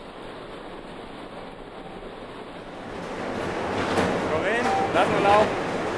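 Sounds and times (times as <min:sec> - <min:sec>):
loud baggage conveyor system running in a hall: 0:02.8 - 0:05.9.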